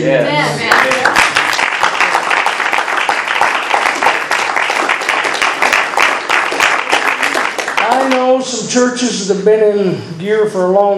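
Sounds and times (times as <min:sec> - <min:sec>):
speech: 0:00.0 - 0:00.9, 0:08.4 - 0:10.9
large crowd applauding at a church gathering: 0:00.5 - 0:08.4.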